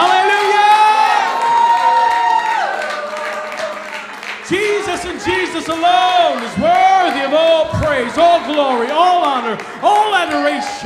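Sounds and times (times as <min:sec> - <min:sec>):
congregation cheering and shouting: 0:00.0 - 0:10.8.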